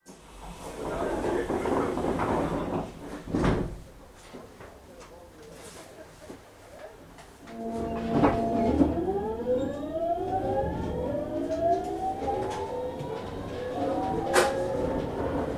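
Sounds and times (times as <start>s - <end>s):
train starting: 0.0s - 3.8s, 7.4s - 15.5s.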